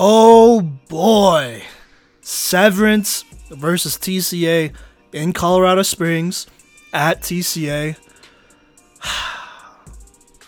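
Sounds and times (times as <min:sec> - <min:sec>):
speech: 0:00.0 - 0:01.7, 0:02.3 - 0:08.1, 0:09.0 - 0:09.3
deep breath: 0:04.7 - 0:05.0, 0:08.0 - 0:09.8.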